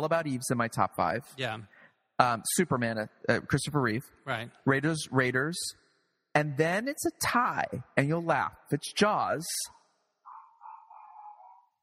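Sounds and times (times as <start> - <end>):
speech: 0.0 - 5.8, 6.4 - 9.8
dog barking whiny high-pitched barks: 10.2 - 11.8.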